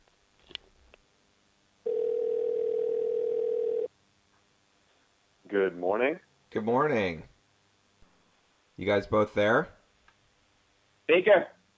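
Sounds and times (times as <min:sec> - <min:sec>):
telephone dial tone while a call is placed: 0:01.9 - 0:03.9
speech: 0:05.7 - 0:07.3, 0:08.8 - 0:09.8, 0:11.1 - 0:11.6.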